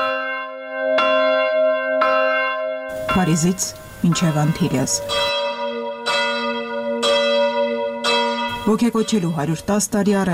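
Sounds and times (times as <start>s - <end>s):
Armenian church bells ringing: 0.0s - 10.3s
speech: 3.2s - 5.4s, 8.7s - 10.3s.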